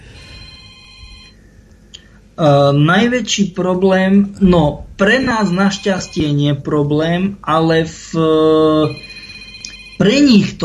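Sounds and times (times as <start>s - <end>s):
telephone ringing: 0.0s - 1.4s, 5.1s - 6.4s, 8.7s - 10.5s
speech: 2.4s - 9.1s, 10.0s - 10.6s.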